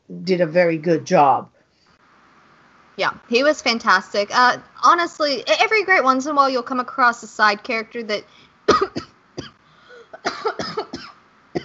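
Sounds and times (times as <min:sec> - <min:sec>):
speech: 0:00.1 - 0:01.5, 0:03.0 - 0:09.0
person coughing from post-nasal drainage running down the throat: 0:08.7 - 0:11.6.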